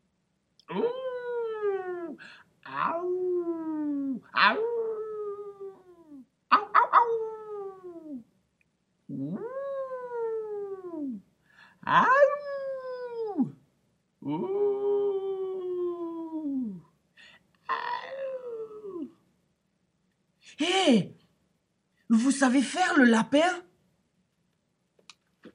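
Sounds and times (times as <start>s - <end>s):
person imitating a wolf howling: 0.7s - 8.2s, 9.1s - 11.2s, 11.8s - 13.6s, 14.2s - 16.9s, 17.7s - 19.2s
speech: 22.5s - 23.7s.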